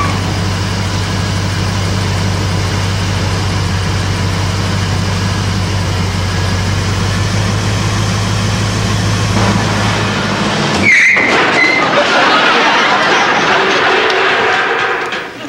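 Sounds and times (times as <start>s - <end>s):
new car engine idling: 0.0s - 11.2s
car pulling away: 0.0s - 13.2s
sharp knock: 9.4s - 11.7s
laughter: 11.4s - 15.4s.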